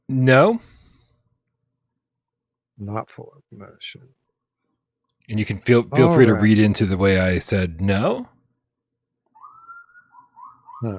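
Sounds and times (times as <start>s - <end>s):
speech: 0.1s - 0.7s, 2.8s - 4.2s, 5.3s - 8.4s, 10.8s - 10.9s
siren wailing: 9.3s - 10.9s.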